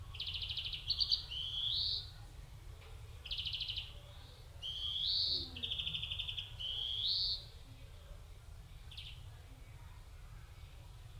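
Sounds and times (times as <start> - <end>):
European greenfinch Chloris chloris song: 0.0 - 2.2, 3.2 - 7.6, 8.9 - 9.3.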